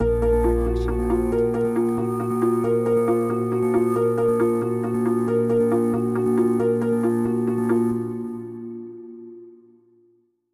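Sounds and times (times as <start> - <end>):
harp: 0.0 - 9.5.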